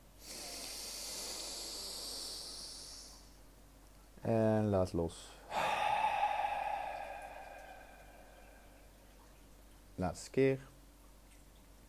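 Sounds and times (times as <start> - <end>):
long deep inhale: 0.2 - 3.4, 5.4 - 9.3
speech: 4.2 - 5.4, 10.0 - 10.7.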